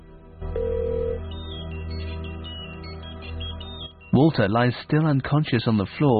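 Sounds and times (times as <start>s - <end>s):
mobile phone ringing with bright repeating electronic melody: 0.5s - 1.2s
speech: 4.2s - 6.1s.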